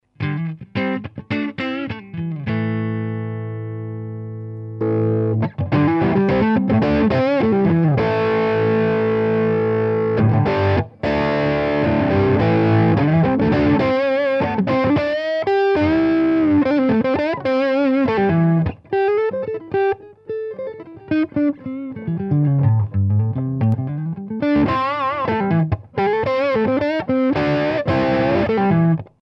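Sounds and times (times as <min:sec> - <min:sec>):
electric guitar through tube overdrive guitar amp: 0:00.0 - 0:29.2.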